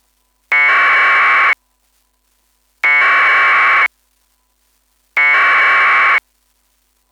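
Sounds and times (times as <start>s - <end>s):
APRS pico beacon signal: 0.5s - 1.6s, 2.8s - 3.9s, 5.2s - 6.2s.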